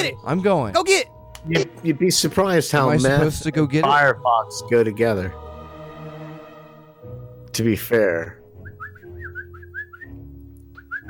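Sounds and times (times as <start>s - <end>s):
speech: 0.0s - 5.4s, 7.6s - 8.4s
person whistling a quick wavering tune: 8.6s - 10.2s, 10.8s - 11.0s.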